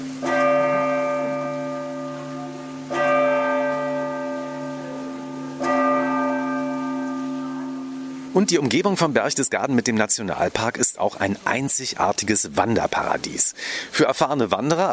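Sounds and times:
collegiate church bells tolling in Berchtesgaden: 0.0 - 10.2
speech: 8.4 - 14.9.

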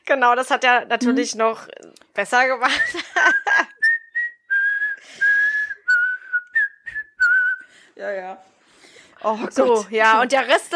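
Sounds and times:
speech: 0.1 - 3.7, 8.0 - 8.5, 9.2 - 10.7
laughter: 2.7 - 3.9
person whistling an eerie tune: 3.8 - 7.8.

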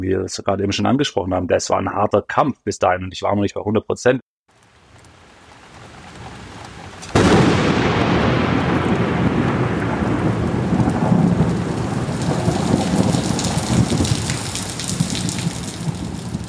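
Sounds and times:
speech: 0.0 - 4.3
heavy torrential rain downpour in Recife Brazil: 4.5 - 16.4.

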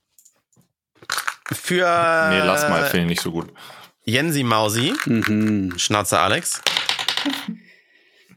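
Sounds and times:
dice clattering across a table: 1.0 - 1.6, 4.6 - 7.5
speech: 1.7 - 7.7.

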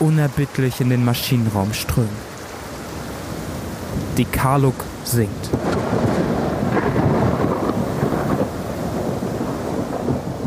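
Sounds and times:
speech: 0.0 - 2.3, 4.2 - 6.1
heavy rain pouring down in a raging storm: 0.0 - 10.4
deep rumbling thunder in a raging storm: 5.3 - 10.4.

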